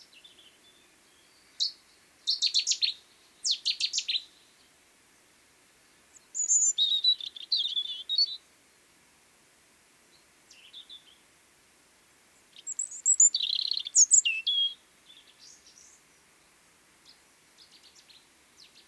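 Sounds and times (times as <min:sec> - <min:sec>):
European robin Erithacus rubecula singing: 0:00.0 - 0:04.7, 0:05.8 - 0:08.5, 0:10.1 - 0:11.2, 0:12.4 - 0:18.8.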